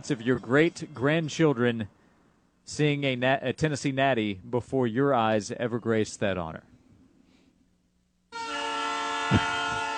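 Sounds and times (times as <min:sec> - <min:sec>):
speech: 0:00.0 - 0:02.0, 0:02.7 - 0:06.7
train horn blaring a steady harmonic tone: 0:08.3 - 0:09.9.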